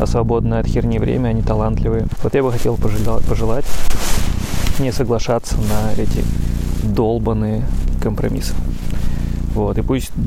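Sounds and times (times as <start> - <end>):
speech: 0.0 - 8.8, 9.5 - 10.2
campfire crackling: 2.1 - 9.6.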